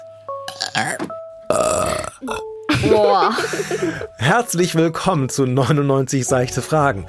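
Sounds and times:
loud gurgling burp into the microphone: 0.5s - 2.6s
speech: 0.7s - 1.6s, 2.2s - 7.0s
laughter: 2.7s - 4.1s.

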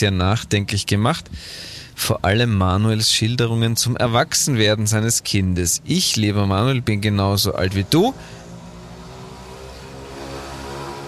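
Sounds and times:
speech: 0.0s - 8.4s
mopeds driving past: 7.9s - 11.0s.

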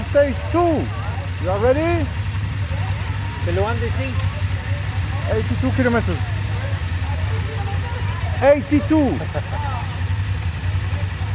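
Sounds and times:
man calling out: 0.0s - 2.2s, 3.2s - 6.8s, 8.3s - 9.9s
group of BMW motorcycle engines idling: 0.0s - 11.3s
speech: 0.1s - 2.2s, 3.4s - 4.4s, 5.3s - 6.3s, 8.4s - 9.7s
laughter: 2.5s - 11.3s.

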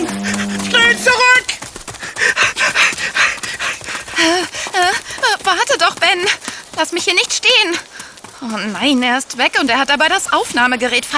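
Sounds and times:
creature rising whining cries: 0.0s - 1.4s
creature in Costa Rica growling and panting: 0.0s - 5.2s
speech: 6.1s - 11.1s.

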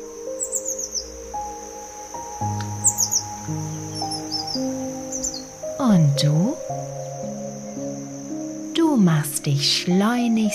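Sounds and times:
small bird chirping as it flies away: 0.0s - 10.5s
soft sustained tonal backdrop: 0.0s - 10.5s
speech: 6.2s - 6.9s, 9.0s - 10.5s.

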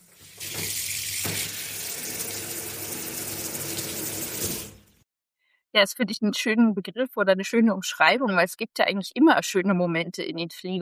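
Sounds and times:
shower water running: 0.0s - 5.0s
speech: 5.8s - 10.8s.

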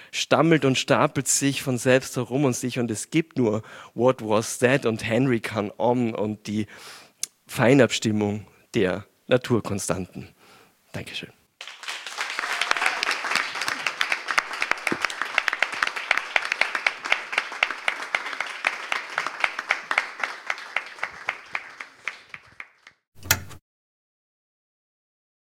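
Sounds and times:
speech: 0.1s - 11.4s
audience applause: 11.6s - 23.0s.

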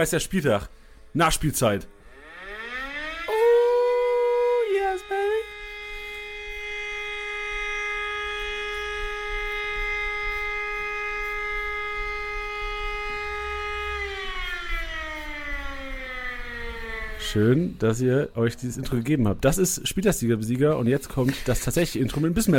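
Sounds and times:
speech: 0.0s - 2.0s, 17.3s - 22.5s
civil defense siren wailing: 1.5s - 18.6s.

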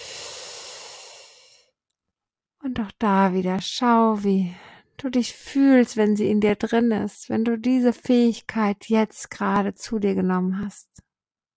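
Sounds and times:
deep breath drawn in through the airways: 0.0s - 1.8s
speech: 2.7s - 11.0s.

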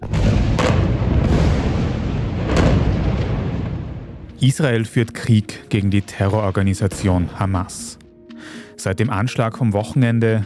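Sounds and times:
huge explosion: 0.0s - 4.5s
speech: 4.4s - 10.4s.

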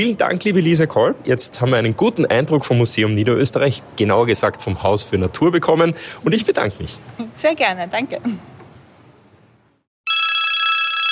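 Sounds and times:
speech: 0.0s - 8.5s
phone ringing for an incoming message: 10.1s - 11.0s.

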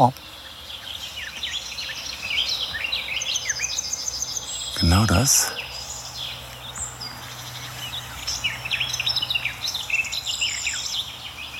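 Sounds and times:
speech: 0.0s - 0.2s, 4.8s - 5.6s
Garden Warbler singing at the edge of an anthill: 0.0s - 11.5s.

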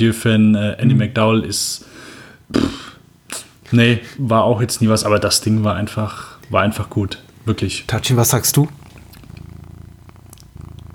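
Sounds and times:
speech: 0.0s - 2.9s, 3.7s - 8.9s
cat purring: 4.8s - 10.9s.

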